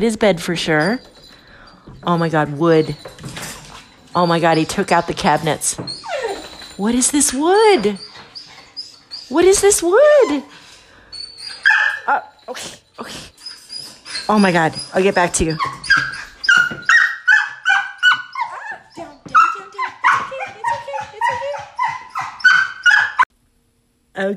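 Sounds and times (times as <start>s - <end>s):
speech: 0.0s - 1.2s, 2.0s - 3.4s, 4.2s - 6.0s, 6.8s - 8.1s, 9.3s - 10.6s, 12.1s - 13.3s, 14.3s - 16.1s
Doberman dog whimpering with high thin whimpers: 2.4s - 23.3s
Doberman dog barking: 17.3s - 23.2s.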